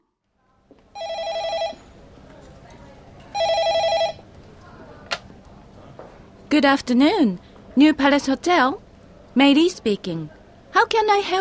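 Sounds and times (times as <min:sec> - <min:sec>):
telephone ringing with bright trilling electronic bursts: 0:01.0 - 0:01.8, 0:03.3 - 0:04.2
speech: 0:06.6 - 0:08.8, 0:09.4 - 0:11.4.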